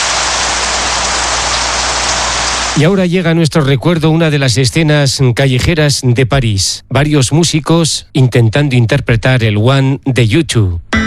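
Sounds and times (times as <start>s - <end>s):
steady rain shower falling outdoors: 0.0s - 2.9s
speech: 2.8s - 11.0s.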